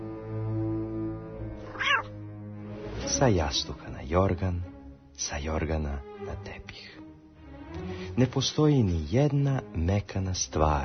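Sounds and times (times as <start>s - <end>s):
cat meowing: 1.6s - 2.2s
speech: 3.2s - 7.0s, 7.9s - 10.8s.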